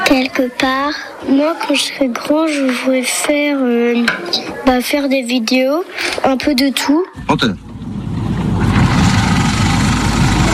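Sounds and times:
speech: 0:00.1 - 0:07.6
engine idling: 0:07.2 - 0:10.5.

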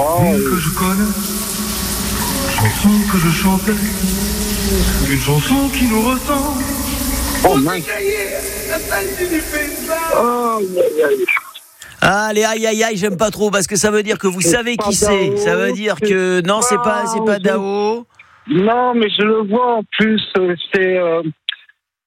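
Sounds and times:
speech: 0:00.0 - 0:01.4, 0:02.6 - 0:06.7, 0:07.4 - 0:11.3, 0:12.0 - 0:21.4
running shower water hissing: 0:00.0 - 0:12.2
man singing a wavering melodic tune under a running shower: 0:00.0 - 0:12.9, 0:14.0 - 0:19.8.

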